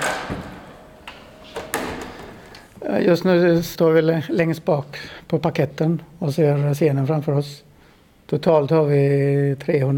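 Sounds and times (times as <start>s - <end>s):
theatre door pushed open rattling and scraping: 0.0s - 0.9s
door latch and frame clicks and knocks: 0.0s - 2.2s
speech: 2.9s - 7.7s, 8.3s - 9.9s.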